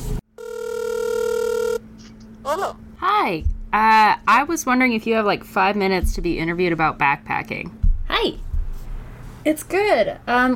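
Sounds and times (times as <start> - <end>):
ringback tone from an outgoing phone call: 0.4 - 1.8
speech: 2.6 - 8.4, 9.4 - 10.5.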